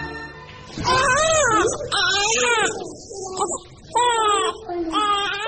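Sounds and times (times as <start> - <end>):
infant crying for milk: 0.8 - 5.4.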